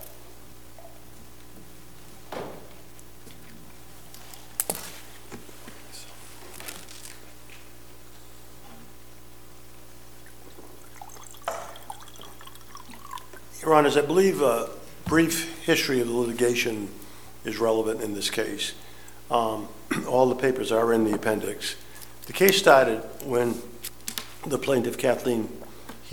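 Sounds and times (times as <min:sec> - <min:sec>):
water being poured or sipped at a counsel table: 0:10.2 - 0:13.6
speech: 0:13.7 - 0:23.7, 0:24.4 - 0:26.1.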